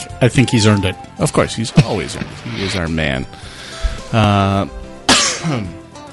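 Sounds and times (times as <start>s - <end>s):
speech: 0.2s - 4.8s, 5.4s - 5.8s
person coughing: 5.1s - 5.8s.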